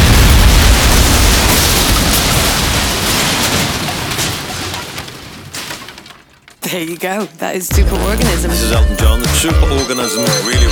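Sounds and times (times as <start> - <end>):
explosion sound effect: 0.0 - 6.0
speech: 6.7 - 10.7.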